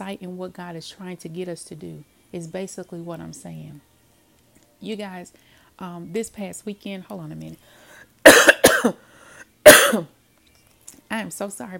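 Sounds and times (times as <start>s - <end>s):
speech: 0.1s - 3.9s, 4.8s - 9.0s, 9.9s - 10.2s, 11.1s - 11.7s
brief raspy breath: 7.6s - 8.2s, 9.0s - 9.6s
loud harsh coughs: 8.2s - 9.0s, 9.6s - 10.1s.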